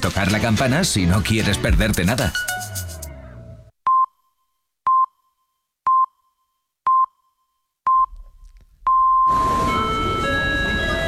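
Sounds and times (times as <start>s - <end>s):
speech: 0.0s - 2.8s
short electronic beeps at a train station: 4.9s - 9.9s
longer final electronic tone: 8.9s - 10.9s.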